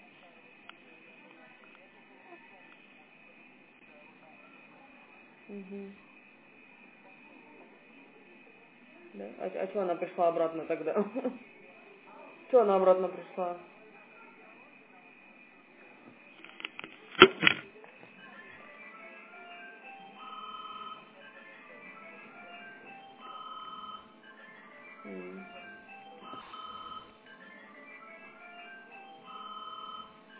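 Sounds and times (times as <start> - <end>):
speech: 5.5 - 6.1, 9.2 - 11.5, 12.5 - 13.7
phone ringtone for an incoming call: 19.1 - 30.3.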